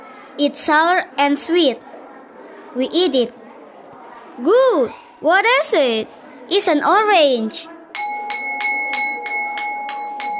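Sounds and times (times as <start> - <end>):
speech: 0.4 - 1.9, 2.8 - 3.4, 4.4 - 7.7
school bell ringing: 8.0 - 10.3.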